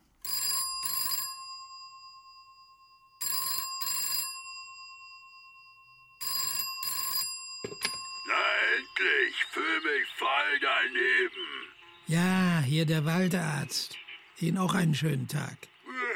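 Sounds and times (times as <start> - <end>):
telephone ringing with bright double bell tone: 0.2 - 12.8
speech: 8.7 - 15.7.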